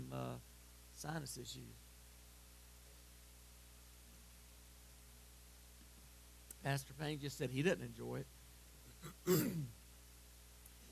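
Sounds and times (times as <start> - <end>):
speech: 0.1 - 1.9, 6.6 - 8.4, 9.0 - 9.8
throat clearing: 8.9 - 9.8.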